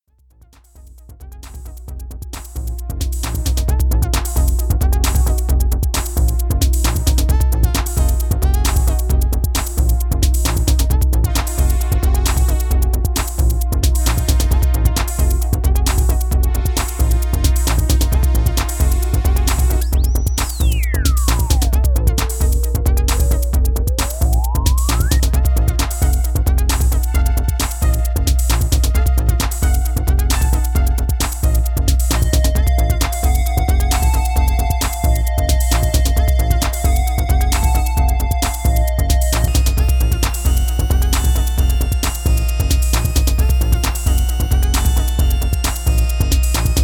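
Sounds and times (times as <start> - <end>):
TR-808 drum machine kit pads: 0.4 - 46.8.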